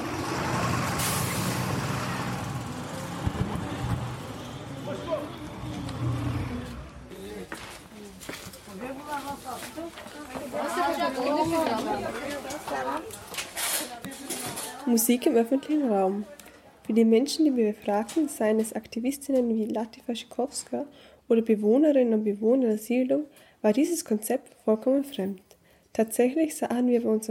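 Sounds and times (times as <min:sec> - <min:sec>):
bus engine rumbling: 0:00.0 - 0:08.1
busy street noise in the centre of Stuttgart: 0:00.0 - 0:19.7
bus air brakes hissing: 0:00.9 - 0:02.4
speech: 0:14.9 - 0:25.4, 0:26.0 - 0:27.2.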